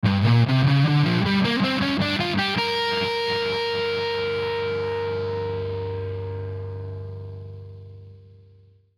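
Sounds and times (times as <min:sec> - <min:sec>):
distorted electric guitar ascending blues scale: 0:00.0 - 0:08.5.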